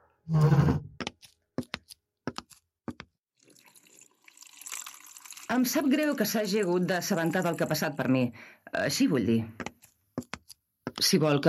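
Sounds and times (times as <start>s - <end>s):
speech: 0.3s - 0.8s, 5.5s - 9.6s, 11.1s - 11.4s
water poured into a glass: 3.4s - 8.0s.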